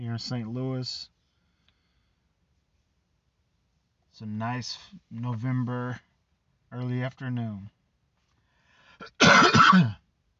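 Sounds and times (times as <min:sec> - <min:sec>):
speech: 0:00.0 - 0:01.1, 0:04.2 - 0:06.1, 0:06.7 - 0:07.8, 0:09.0 - 0:10.0
person coughing and clearing throat: 0:09.0 - 0:10.0.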